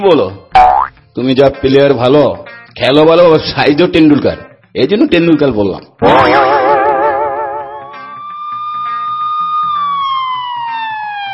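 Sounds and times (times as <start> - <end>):
speech: 0.0 - 6.6
police car siren wailing: 6.0 - 11.3.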